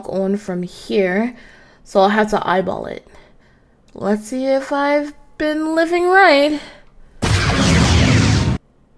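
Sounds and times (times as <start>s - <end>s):
speech: 0.0s - 3.2s, 3.9s - 6.8s
torpedoes fired and exploding: 7.2s - 8.6s.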